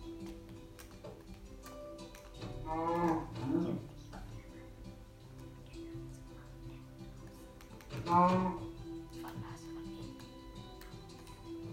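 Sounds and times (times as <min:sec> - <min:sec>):
cow mooing in a video game: 0:02.6 - 0:03.8
speech: 0:02.7 - 0:03.1, 0:08.1 - 0:08.6.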